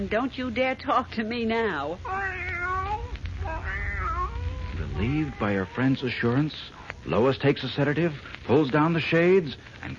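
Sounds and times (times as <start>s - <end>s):
speech: 0.0s - 2.4s, 5.0s - 9.9s
steady low hum: 0.0s - 9.9s
fawn-colored blue-eyed cat meowing at the foot of a bed: 2.0s - 6.2s.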